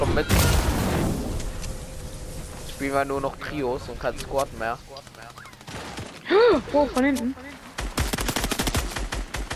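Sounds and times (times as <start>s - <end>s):
speech: 0.2s - 0.5s, 2.8s - 5.3s, 6.4s - 7.5s
video game automatic gunfire: 7.8s - 9.5s.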